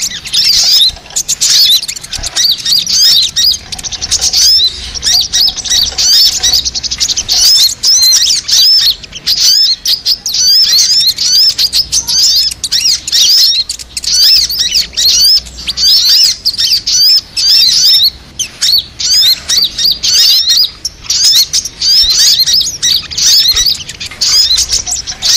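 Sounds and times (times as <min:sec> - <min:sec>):
Crimson Sunbird song: 0:00.0 - 0:25.3.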